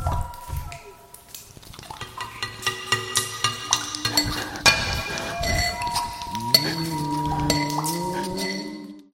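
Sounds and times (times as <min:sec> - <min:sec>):
dry crypt echoes: 0:01.9 - 0:09.0.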